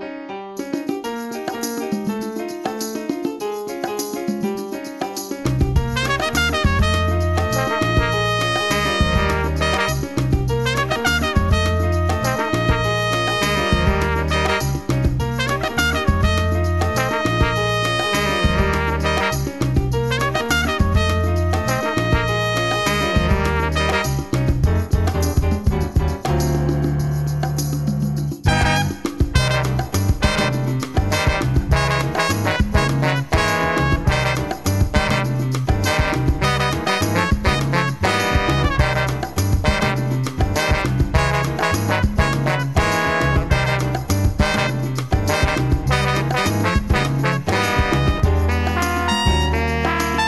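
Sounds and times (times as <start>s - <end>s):
salsa music: 0.3s - 50.2s
horns playing: 5.9s - 14.9s, 15.4s - 19.5s, 20.1s - 24.2s, 28.5s - 50.2s.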